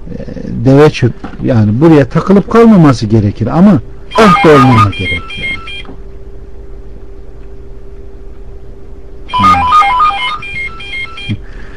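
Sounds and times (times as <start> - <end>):
speech: 0.6 - 5.2
phone ringtone of bright rapid electronic tones: 4.1 - 5.9, 9.3 - 11.4.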